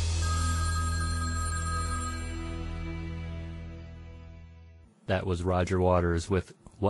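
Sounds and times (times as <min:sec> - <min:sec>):
telephone bell ringing with a metallic trill: 0:00.2 - 0:02.7
speech: 0:05.1 - 0:06.8.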